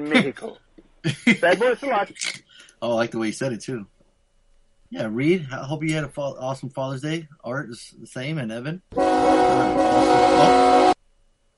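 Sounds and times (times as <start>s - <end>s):
speech: 0.0s - 3.9s, 4.9s - 10.9s
laughter: 1.1s - 2.0s
train horn blaring: 9.0s - 11.0s.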